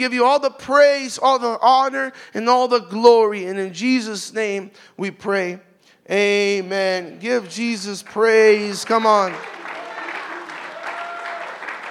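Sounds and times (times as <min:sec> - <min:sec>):
speech: 0:00.0 - 0:09.6
church congregation clapping during a worship service: 0:08.0 - 0:11.8.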